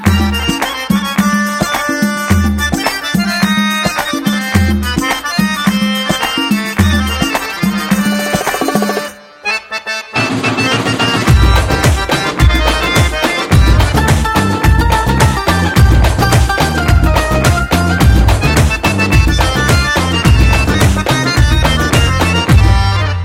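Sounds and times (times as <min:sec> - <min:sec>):
instrumental tone: 0:00.0 - 0:23.2.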